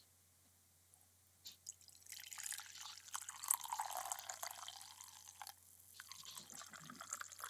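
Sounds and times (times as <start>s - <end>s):
coffee being poured into a cup: 1.7s - 7.4s.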